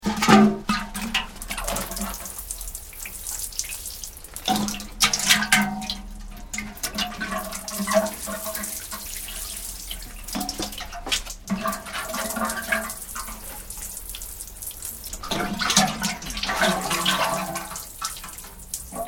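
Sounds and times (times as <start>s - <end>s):
water sloshing in an old tin watering can: 0.0s - 19.0s.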